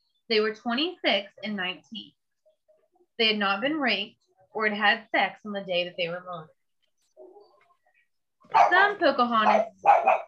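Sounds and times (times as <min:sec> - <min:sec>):
speech: 0:00.3 - 0:02.2, 0:03.2 - 0:06.6, 0:08.5 - 0:10.2
dogs barking outside: 0:08.5 - 0:10.2.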